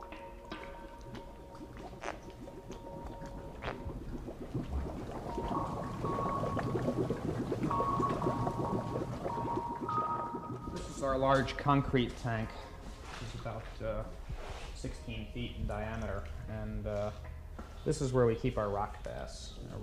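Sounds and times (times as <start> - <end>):
spiny pufferfish deflating, forcing water out in gurgles and splashes: 1.6 - 11.1
speech: 11.0 - 12.7, 13.4 - 14.2, 14.8 - 19.8.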